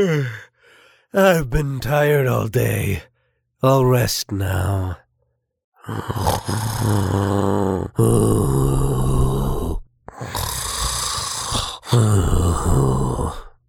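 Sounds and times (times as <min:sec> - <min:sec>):
speech: 0:00.0 - 0:00.5, 0:01.1 - 0:05.0, 0:05.8 - 0:08.9
wolf snoring asleep in bed in a house: 0:05.8 - 0:13.4.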